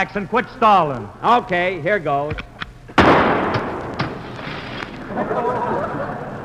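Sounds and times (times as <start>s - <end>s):
speech: 0.0s - 3.3s
rifle shot during target shooting: 3.0s - 4.4s
laughter: 4.9s - 6.4s.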